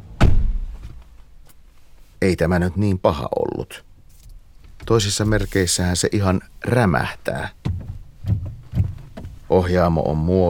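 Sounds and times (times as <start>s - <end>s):
car door slamming shut: 0.2s - 0.8s
speech: 2.2s - 3.9s, 4.9s - 7.6s, 9.5s - 10.4s.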